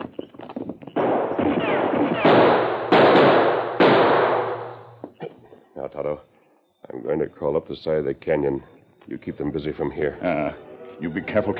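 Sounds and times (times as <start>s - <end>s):
gunshots from behind a large rock in a canyon: 1.0s - 5.0s
speech: 5.9s - 6.3s, 6.9s - 11.5s.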